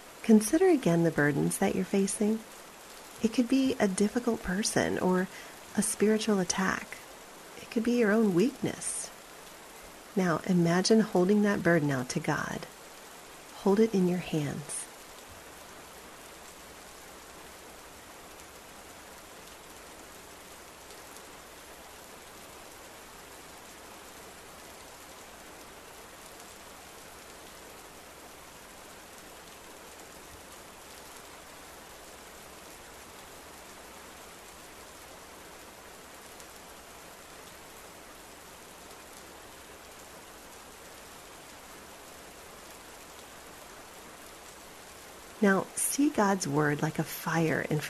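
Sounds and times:
steady rainfall: 0.0 - 47.8
speech: 0.2 - 2.6, 3.2 - 7.0, 7.7 - 9.0, 10.2 - 12.7, 13.6 - 14.8, 45.4 - 47.8.

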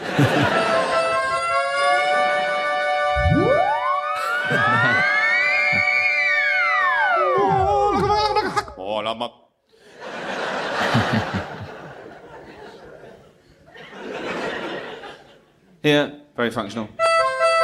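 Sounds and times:
people laughing: 0.0 - 1.5, 4.2 - 6.0, 7.4 - 8.8, 9.9 - 15.6
speech: 0.2 - 0.6, 15.8 - 16.9
European ambulance siren passing by: 1.2 - 8.1.

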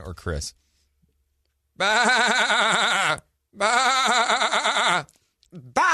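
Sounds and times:
person imitating goat bleats: 1.8 - 5.9.

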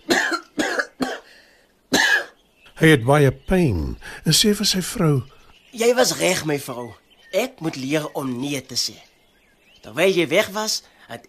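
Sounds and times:
man coughing: 0.0 - 1.3, 1.9 - 2.4
speech: 2.8 - 9.1, 9.8 - 11.2.

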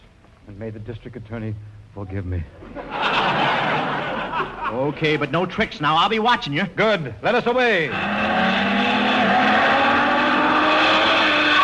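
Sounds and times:
speech: 0.5 - 3.5, 4.2 - 8.3
laughter: 2.6 - 5.4
car speeding past at high revs: 7.9 - 11.5.

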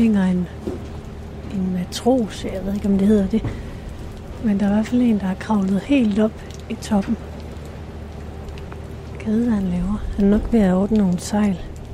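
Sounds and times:
speech: 0.0 - 0.7, 1.9 - 3.7, 4.4 - 7.3, 9.3 - 11.7
steady rain falling: 0.0 - 11.9.

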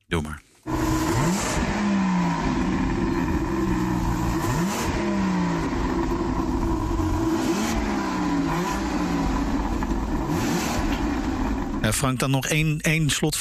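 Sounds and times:
speech: 0.1 - 0.8, 11.9 - 13.4
BMW V12 engine revving: 0.7 - 12.2.

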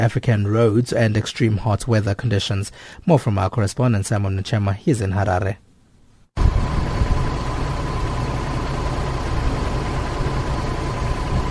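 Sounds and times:
speech: 0.0 - 5.6
bus engine starting and idling: 6.4 - 11.5.

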